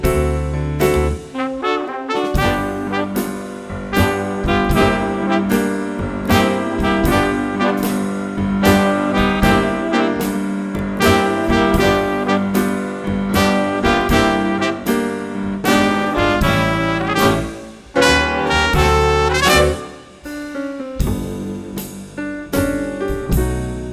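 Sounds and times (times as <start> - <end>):
gospel funk music: 0.2 - 23.9.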